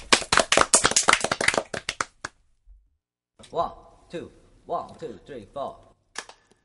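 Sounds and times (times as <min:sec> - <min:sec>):
audience applause: 0:00.0 - 0:02.2
speech: 0:03.5 - 0:05.9.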